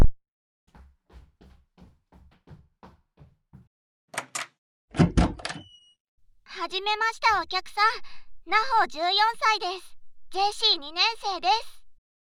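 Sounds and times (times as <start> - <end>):
footsteps: 0.7 - 3.7
front door latch clicks: 4.2 - 5.7
speech: 6.7 - 11.8.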